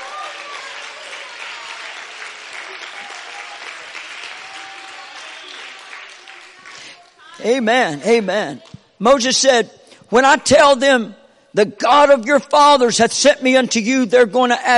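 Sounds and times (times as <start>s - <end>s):
church congregation applauding and cheering: 0.0s - 8.7s
speech: 7.4s - 14.7s.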